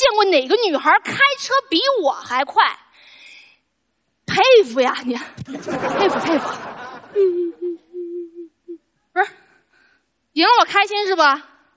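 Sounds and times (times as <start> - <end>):
speech: 0.2 - 2.8, 4.3 - 7.8, 9.2 - 9.4, 10.4 - 11.5
laughter: 5.5 - 7.7
woman sobbing and whimpering: 6.0 - 9.4.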